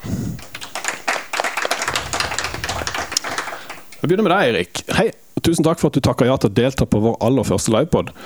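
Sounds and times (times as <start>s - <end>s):
live audience applause: 0.0s - 5.0s
speech: 4.0s - 8.2s.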